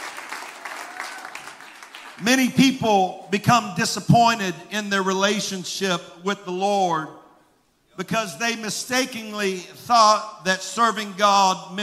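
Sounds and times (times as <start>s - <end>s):
large audience clapping hands in praise: 0.0s - 2.3s
speech: 2.2s - 7.2s, 8.0s - 11.8s.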